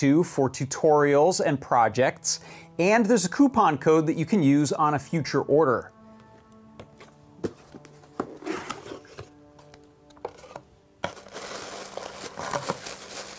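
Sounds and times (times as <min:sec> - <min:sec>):
speech: 0:00.0 - 0:06.0
tissue paper crinkling as box contents unwrapped: 0:10.4 - 0:13.3.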